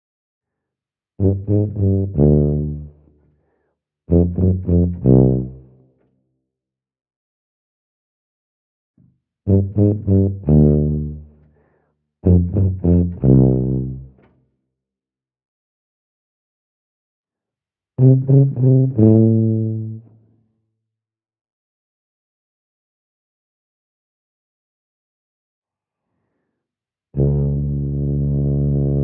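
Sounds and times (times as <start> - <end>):
tuba solo: 1.2 - 3.0, 4.1 - 5.8, 9.5 - 11.3, 12.2 - 14.1, 18.0 - 20.1, 27.2 - 29.0.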